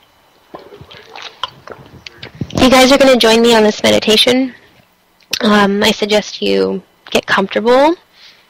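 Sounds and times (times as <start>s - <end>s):
person taking a drink of water, sipping and swallowing: 0.5s - 2.6s
speech: 2.6s - 4.6s, 5.4s - 8.0s.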